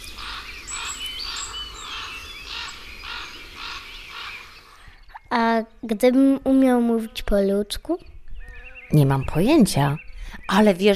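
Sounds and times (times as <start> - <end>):
common raven calling with harsh rasping croaks: 0.0 - 4.9
faint thin chirps of smaller birds: 0.0 - 10.9
speech: 5.6 - 8.1, 8.9 - 10.9.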